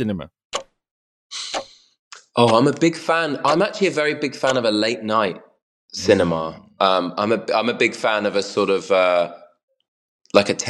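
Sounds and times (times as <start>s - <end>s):
speech: 0.0s - 0.4s, 2.4s - 9.4s, 10.3s - 10.6s
wall clock clicking in a foyer: 2.4s - 2.8s, 3.4s - 3.8s, 4.4s - 4.8s.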